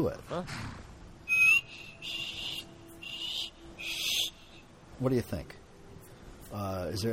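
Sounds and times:
speech: 0.0s - 0.8s, 5.0s - 5.6s, 6.5s - 7.1s
person trying to whistle: 1.3s - 4.4s.

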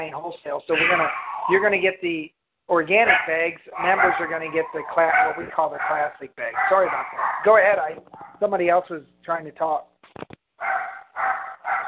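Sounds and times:
speech: 0.0s - 10.3s
dogs barking with quick yips and drawn-out barks: 0.7s - 1.7s, 2.9s - 8.5s, 10.6s - 11.8s.

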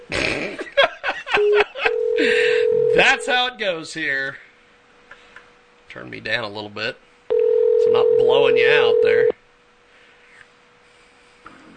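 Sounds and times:
telephone ringing tone over Skype: 1.4s - 3.3s, 7.3s - 9.3s
speech: 3.0s - 4.5s, 6.0s - 7.1s, 7.8s - 9.3s
electronic telephone dialing tones: 7.3s - 9.3s.

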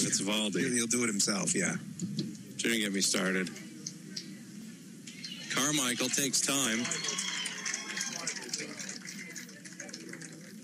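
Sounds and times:
speech: 0.0s - 3.7s, 5.6s - 7.4s
stadium crowd cheering at a baseball game: 5.3s - 10.6s.

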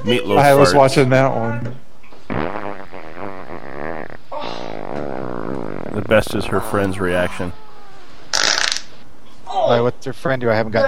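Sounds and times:
speech: 0.0s - 1.8s, 6.0s - 7.6s, 9.6s - 10.8s
loud buzzy fart sounds played from a video: 2.2s - 7.0s, 8.3s - 9.0s.

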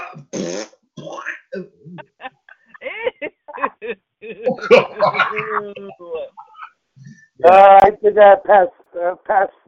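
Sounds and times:
fart: 0.0s - 0.8s
laughter: 2.0s - 6.3s
speech: 4.6s - 6.3s, 7.4s - 9.6s.

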